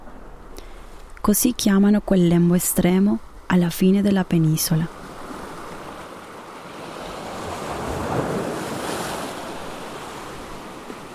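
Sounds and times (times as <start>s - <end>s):
speech: 1.3s - 5.0s
sea waves breaking and washing against rocks: 4.9s - 11.1s.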